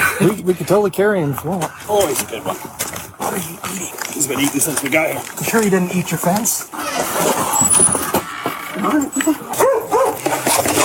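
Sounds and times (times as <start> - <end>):
outdoor noise: 0.0 - 10.8
speech: 0.2 - 8.0, 8.8 - 9.7
big dog barking and yipping: 9.5 - 10.4.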